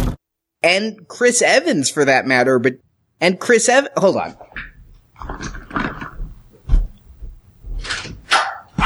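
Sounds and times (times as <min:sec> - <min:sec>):
speech: 0:00.6 - 0:04.7
dog barking: 0:08.2 - 0:08.8.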